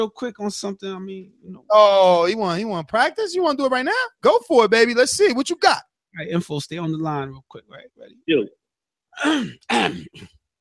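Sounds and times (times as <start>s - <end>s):
speech: 0.0s - 8.6s, 9.2s - 10.4s
person clearing throat: 9.2s - 10.4s.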